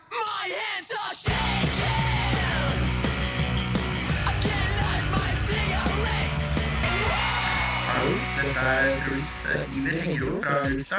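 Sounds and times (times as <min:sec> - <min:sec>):
energetic, almost shouted vocals: 0:00.0 - 0:03.0, 0:04.1 - 0:10.9
band playing a dense music track: 0:01.3 - 0:10.9
speech: 0:08.4 - 0:10.9.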